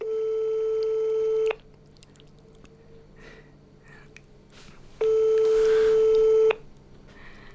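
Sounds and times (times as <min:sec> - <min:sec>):
outgoing telephone call electronic ring tones: 0:00.0 - 0:01.5, 0:05.0 - 0:06.6.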